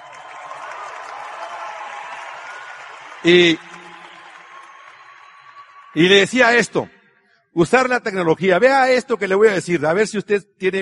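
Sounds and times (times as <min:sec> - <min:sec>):
audience applause: 0:00.0 - 0:06.5
speech: 0:03.2 - 0:03.7, 0:06.0 - 0:07.0, 0:07.6 - 0:10.8.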